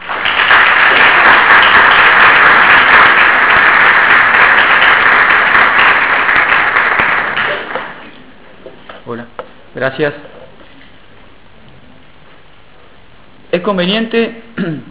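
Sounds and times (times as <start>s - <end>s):
conference audience applause welcoming a lecturer: 0.0s - 8.2s
speech: 9.1s - 10.3s, 13.6s - 14.9s.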